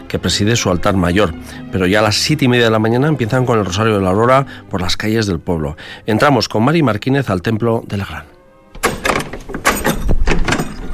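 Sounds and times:
speech: 0.1 - 8.3
old church door with an old-fashioned key being pushed shut: 8.7 - 10.9.

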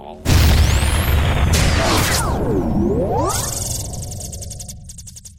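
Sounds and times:
cannon blast: 0.2 - 4.0.

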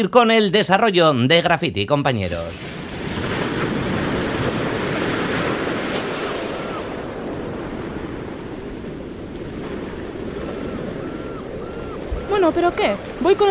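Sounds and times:
speech: 0.0 - 2.8, 12.5 - 13.4
surf breaking on Itxurun beach in Zumaia on the Gipuzkoan coast: 2.4 - 13.4
gusty wind rumble against the microphone: 2.6 - 13.4.

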